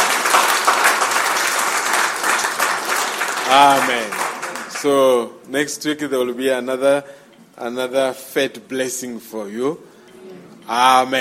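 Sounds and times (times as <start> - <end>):
congregation applauding: 0.0 - 5.2
speech: 3.5 - 4.2, 4.8 - 11.2.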